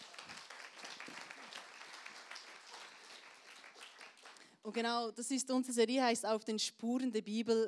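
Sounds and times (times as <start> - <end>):
church audience applause: 0.0 - 4.4
speech: 4.6 - 7.6.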